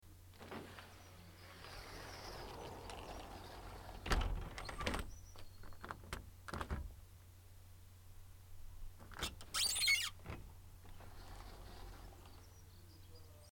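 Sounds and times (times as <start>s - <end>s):
veranda sliding door closing: 0.3s - 7.0s, 9.0s - 12.9s.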